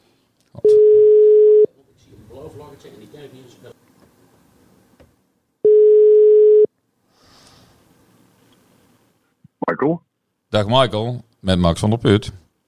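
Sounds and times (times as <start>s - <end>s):
telephone line beeps while placing a call: 0.6s - 1.7s, 5.6s - 6.7s
speech: 2.8s - 3.8s, 9.8s - 12.4s.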